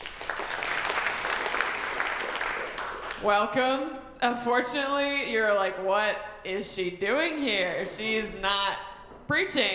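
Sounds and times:
congregation clapping: 0.0 - 3.4
speech: 3.2 - 9.7.

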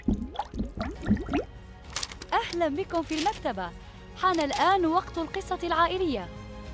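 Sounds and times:
bubbles blown under water: 0.0 - 1.5
speech: 2.4 - 6.4.

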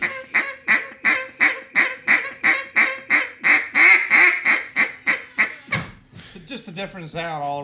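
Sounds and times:
hen duck call quacking: 0.0 - 6.0
speech: 6.5 - 7.6.

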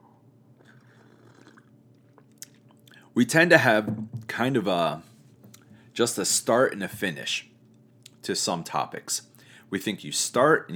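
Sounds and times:
person sipping a drink with soft slurps: 0.5 - 3.0
swallowing noises: 0.6 - 3.0
speech: 3.2 - 5.1, 6.0 - 7.5, 8.2 - 10.7.

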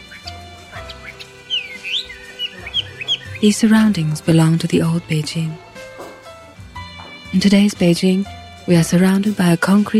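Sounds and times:
caged songbird singing in a cafe courtyard in Beijing: 0.0 - 5.2
speech: 3.4 - 5.6, 7.4 - 9.9.

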